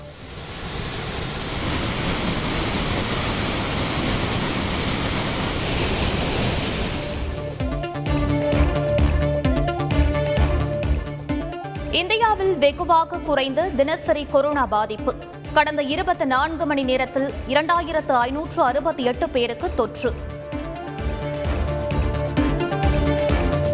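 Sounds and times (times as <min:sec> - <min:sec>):
water gushing over the Hogenakkal waterfalls swollen by heavy rain: 0:00.4 - 0:07.5
music: 0:07.0 - 0:23.7
speech: 0:12.0 - 0:20.3.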